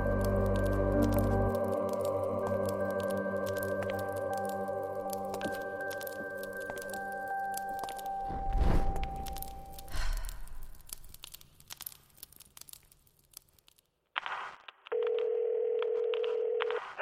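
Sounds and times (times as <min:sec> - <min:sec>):
telephone line static crackling from a phone in a tube: 0:00.2 - 0:15.2
telephone dial tone: 0:15.0 - 0:16.8.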